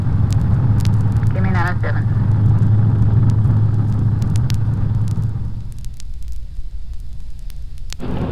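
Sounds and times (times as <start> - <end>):
small clicks and knocks: 0.0 - 1.4, 3.2 - 8.3
police car engine rumbling driving into a service station: 0.0 - 7.0, 7.6 - 8.3
hiss: 0.0 - 8.3.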